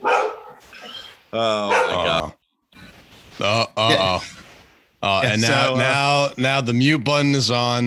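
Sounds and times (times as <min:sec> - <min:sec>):
dog barking loudly in a strained outburst: 0:00.0 - 0:00.7, 0:01.6 - 0:02.2
speech: 0:01.3 - 0:02.4, 0:03.4 - 0:04.0, 0:05.2 - 0:07.8.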